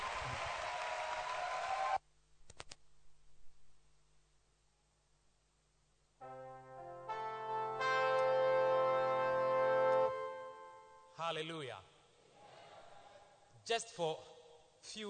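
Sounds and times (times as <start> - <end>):
audience applause: 0.0 - 2.0
sustained musical tones: 6.2 - 11.2
speech: 11.3 - 11.9, 13.7 - 15.0.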